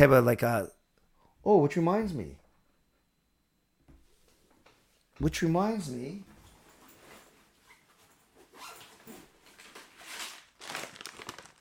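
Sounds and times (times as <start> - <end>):
speech: 0.0 - 0.8, 1.4 - 2.4, 5.2 - 6.3
wrapper around assorted sour ball candies crinkling: 10.1 - 11.5.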